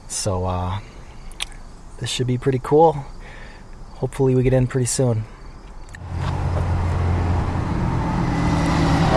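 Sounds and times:
road noise: 0:00.0 - 0:09.1
speech: 0:00.2 - 0:00.9, 0:02.0 - 0:03.2, 0:04.0 - 0:05.4
bus engine roar driving past: 0:06.0 - 0:09.1.

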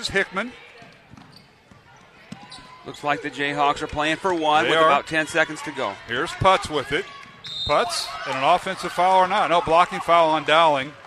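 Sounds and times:
speech: 0:00.0 - 0:00.7, 0:02.8 - 0:11.0
basketball being dribbled in the front court during a game: 0:00.8 - 0:02.6.

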